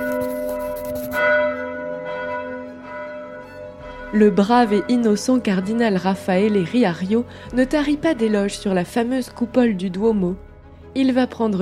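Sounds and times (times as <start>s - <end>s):
eleven colossal basilica bells ringing: 1.2s - 10.0s
speech: 4.1s - 11.5s.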